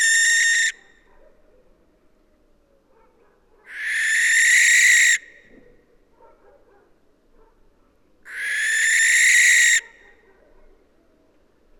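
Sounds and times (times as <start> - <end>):
barn owl Tyto alba hissing screeches: 0.0 - 0.7, 3.7 - 5.2, 8.3 - 9.8.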